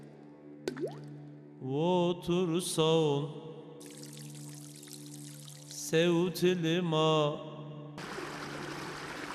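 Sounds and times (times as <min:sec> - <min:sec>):
speech: 0:00.7 - 0:04.0, 0:05.9 - 0:07.5
water flowing: 0:03.8 - 0:05.9, 0:08.0 - 0:09.3.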